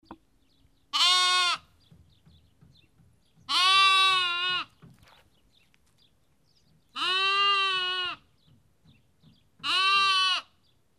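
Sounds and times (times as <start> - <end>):
lamb bleating: 0.9 - 1.7, 3.5 - 4.8, 7.0 - 8.3, 9.6 - 10.6.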